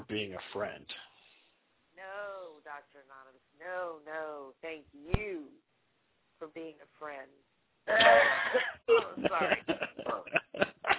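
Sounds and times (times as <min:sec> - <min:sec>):
speech: 0:00.1 - 0:01.0, 0:02.7 - 0:05.6, 0:06.4 - 0:10.8
throat clearing from leftover phlegm after a cold: 0:07.9 - 0:08.7
laughter: 0:07.9 - 0:10.9.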